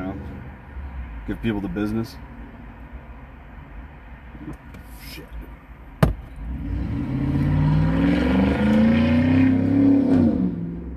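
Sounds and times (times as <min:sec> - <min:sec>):
speech: 0:01.3 - 0:02.3
sharp knock: 0:06.0 - 0:06.2
lifted truck engine revving as it drives past in a town: 0:06.4 - 0:10.8.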